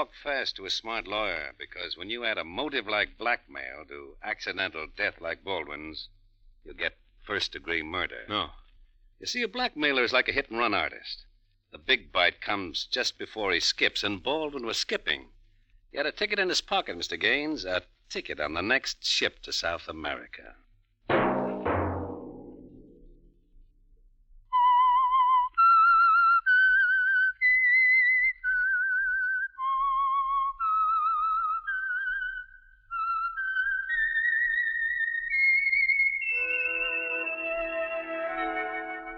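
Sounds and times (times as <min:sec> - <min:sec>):
speech: 0:00.0 - 0:08.6, 0:09.2 - 0:15.3, 0:15.9 - 0:20.6
whistled theme tune: 0:24.5 - 0:39.1.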